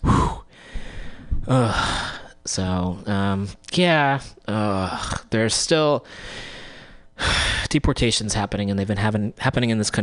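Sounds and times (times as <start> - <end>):
deep breath in and out: 0.0 - 2.3, 6.0 - 7.7
speech: 1.5 - 6.6, 7.2 - 10.0.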